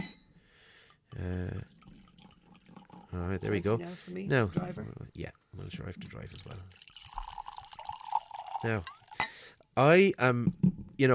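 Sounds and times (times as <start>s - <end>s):
red Cabernet Sauvignon and Merlot wine pouring into a glass: 1.3s - 3.8s, 6.4s - 9.4s
speech: 3.2s - 6.8s, 8.6s - 9.0s, 9.8s - 11.1s.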